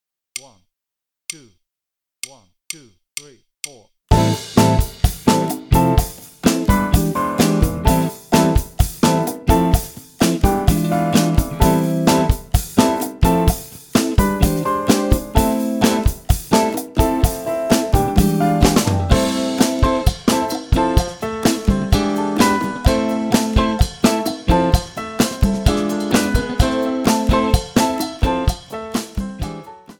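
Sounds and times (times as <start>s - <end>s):
cha-cha play-along bass line: 4.1s - 29.8s.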